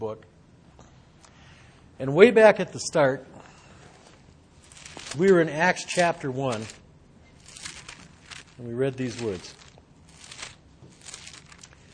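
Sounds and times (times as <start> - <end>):
speech: 0.0 - 0.4, 2.0 - 3.3, 5.2 - 6.8, 8.6 - 9.6
low hum: 0.0 - 11.9
book pages turning: 4.6 - 6.8, 7.4 - 11.9.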